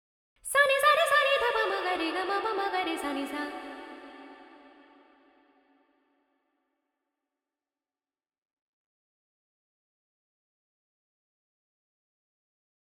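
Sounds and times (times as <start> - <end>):
woman singing: 0.4 - 5.1.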